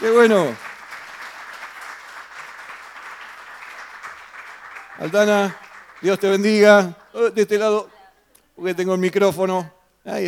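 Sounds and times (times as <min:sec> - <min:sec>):
speech: 0:00.0 - 0:00.6, 0:05.0 - 0:07.9, 0:08.6 - 0:10.2
audience applause at a testimony event: 0:00.0 - 0:07.1.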